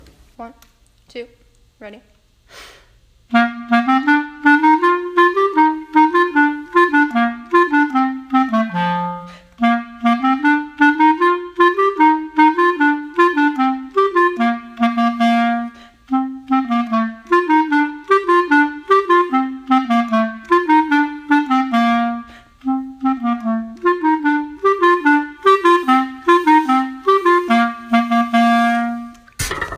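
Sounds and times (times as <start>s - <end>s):
bass clarinet: 3.2s - 29.3s.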